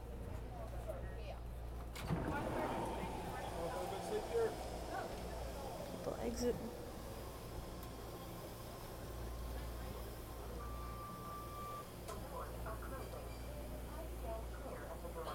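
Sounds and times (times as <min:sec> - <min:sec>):
faint voices: 0:00.1 - 0:15.3
moving commuter train rumbling and humming heard from inside the carriage: 0:02.1 - 0:10.2
speech: 0:06.1 - 0:06.8.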